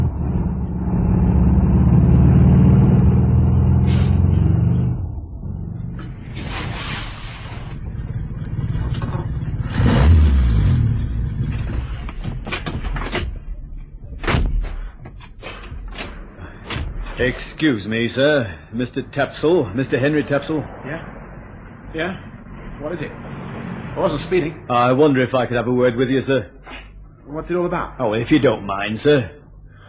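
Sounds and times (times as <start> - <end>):
car engine running low: 0.0 - 14.0, 18.5 - 25.8
car engine roaring: 0.0 - 26.3
speech: 17.3 - 21.2, 21.9 - 23.3, 24.0 - 29.4.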